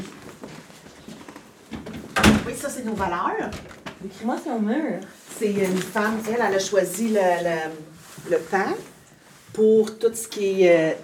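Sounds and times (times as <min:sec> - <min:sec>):
house door shutting: 0:01.8 - 0:02.7
speech: 0:02.5 - 0:08.9, 0:09.6 - 0:11.0.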